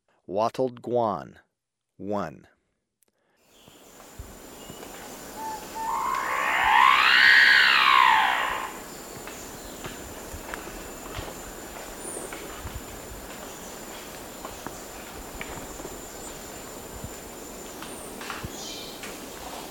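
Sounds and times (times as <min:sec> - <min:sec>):
Wattled Guan calling in Ecuador: 0:05.3 - 0:08.9.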